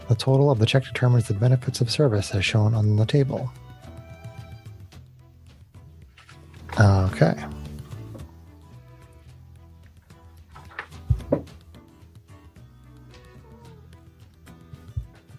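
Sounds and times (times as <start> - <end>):
speech: 0.1 - 3.6, 7.2 - 7.5
cat meowing: 13.2 - 14.0.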